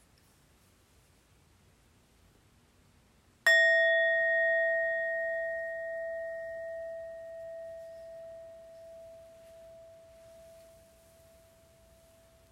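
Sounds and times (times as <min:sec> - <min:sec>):
meditation bell struck in a quiet room: 0:03.5 - 0:12.4.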